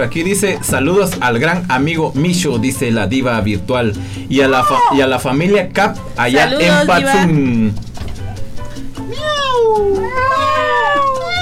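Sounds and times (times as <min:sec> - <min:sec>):
speech: 0:00.0 - 0:07.9, 0:09.6 - 0:11.1
cat meowing: 0:09.1 - 0:11.4.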